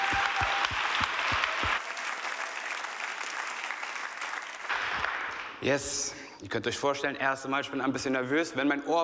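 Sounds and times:
audience applauding: 0.0s - 5.5s
speech: 5.6s - 9.0s.

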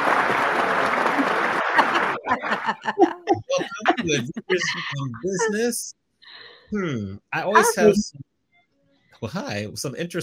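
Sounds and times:
audience applause: 0.0s - 5.7s
people chuckling: 0.5s - 5.9s, 6.8s - 8.1s, 9.2s - 10.2s
speech: 2.3s - 8.3s, 9.2s - 10.2s.

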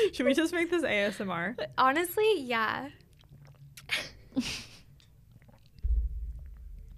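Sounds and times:
speech: 0.1s - 3.0s, 4.4s - 4.7s
person gulping water: 3.0s - 6.9s
low rumble from drinking: 5.8s - 6.9s.

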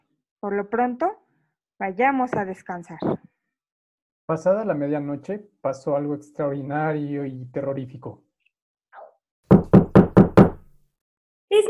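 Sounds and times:
speech: 0.4s - 1.2s, 1.8s - 3.3s, 4.3s - 8.2s
firm knocks on a wooden door: 9.5s - 10.7s.

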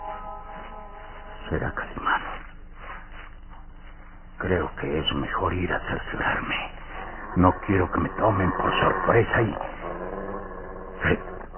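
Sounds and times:
speech: 1.5s - 2.1s, 4.4s - 6.8s, 7.4s - 9.8s, 11.0s - 11.3s
low menacing animal growl: 6.3s - 11.5s.

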